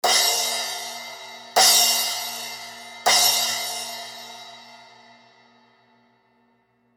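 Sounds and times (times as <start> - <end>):
Zildjian splash cymbal hits: 0.0 - 5.4.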